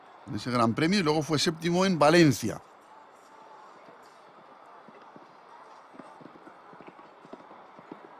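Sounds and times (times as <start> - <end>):
arena noise: 0.0 - 8.1
speech: 0.3 - 2.7
show jumping horse hooves clip-clopping in a competition arena: 2.6 - 8.1.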